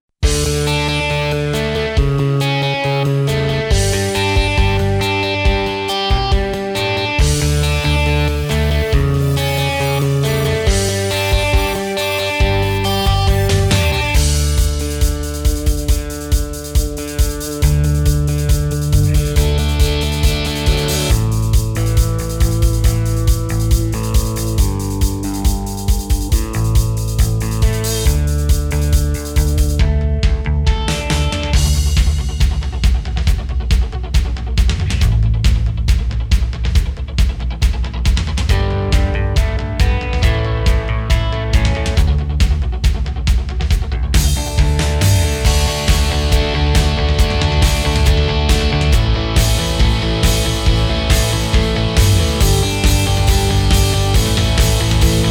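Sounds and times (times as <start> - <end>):
rock style music on a Korg Pa4X keyboard: 0.2 - 55.2.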